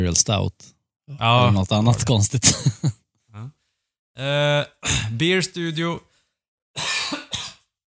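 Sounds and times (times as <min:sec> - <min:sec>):
speech: 0:00.0 - 0:03.6, 0:04.2 - 0:06.1, 0:06.8 - 0:07.1
person coughing harshly: 0:06.8 - 0:07.7.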